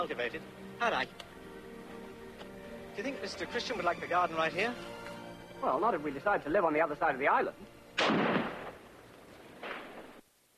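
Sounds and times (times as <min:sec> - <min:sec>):
speech: 0:00.0 - 0:01.4, 0:03.0 - 0:05.0, 0:05.6 - 0:08.3
gunshots fired while hunting game on an island: 0:08.0 - 0:08.9, 0:09.6 - 0:10.2.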